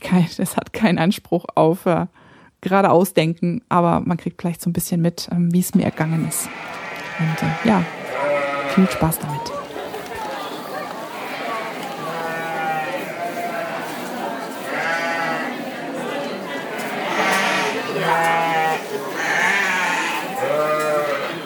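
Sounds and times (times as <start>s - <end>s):
speech: 0.1s - 8.0s, 8.7s - 9.6s
murmur of activity in a shearing barn: 5.6s - 21.4s
sheep bleating in a shearing barn: 5.9s - 9.5s, 11.2s - 13.9s, 14.7s - 15.6s, 16.9s - 21.4s
laughter: 7.7s - 14.7s.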